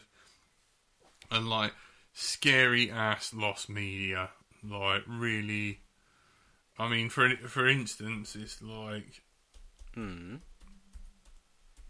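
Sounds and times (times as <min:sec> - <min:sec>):
speech: 0:01.3 - 0:05.8, 0:06.8 - 0:09.2, 0:10.0 - 0:10.5
typing on a computer keyboard: 0:09.5 - 0:11.8.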